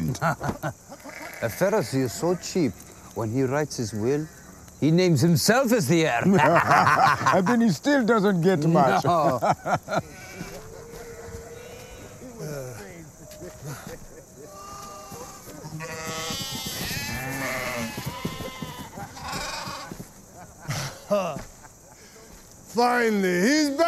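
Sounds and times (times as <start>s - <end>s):
laughter: 0.0s - 1.0s, 6.1s - 7.8s, 8.7s - 16.2s, 18.2s - 22.4s
speech: 0.2s - 10.2s, 21.1s - 21.4s, 22.8s - 23.8s
sheep bleating: 0.9s - 2.4s, 10.0s - 12.4s, 14.4s - 20.0s.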